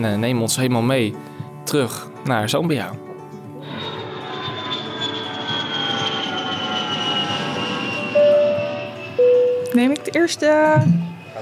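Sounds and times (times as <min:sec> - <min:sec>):
speech: 0:00.0 - 0:03.1, 0:09.8 - 0:11.3
airplane engines droning for a flight departure: 0:03.2 - 0:11.3
sustained bright tones: 0:03.6 - 0:11.3.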